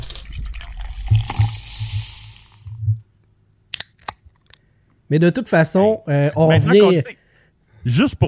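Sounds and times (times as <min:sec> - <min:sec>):
foamy fizzing beer pouring: 0:00.3 - 0:02.7
beer can snapping open: 0:01.1 - 0:02.7, 0:03.7 - 0:04.6
speech: 0:05.1 - 0:07.2, 0:07.8 - 0:08.2.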